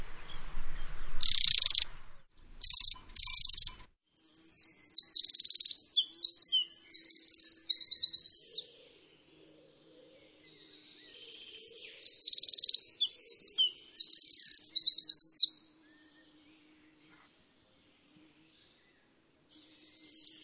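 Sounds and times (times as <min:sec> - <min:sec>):
bird chirping and trilling: 0:00.0 - 0:08.7, 0:11.0 - 0:15.6, 0:19.6 - 0:20.4.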